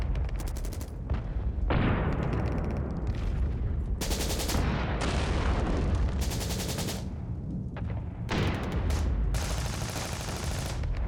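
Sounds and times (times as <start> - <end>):
war fire ambience: 0.0 - 11.0.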